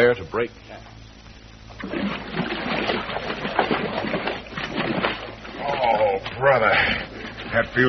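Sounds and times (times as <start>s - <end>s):
speech: 0.0s - 1.0s, 6.4s - 7.8s
people splashing and sloshing in a jungle stream: 1.8s - 6.4s.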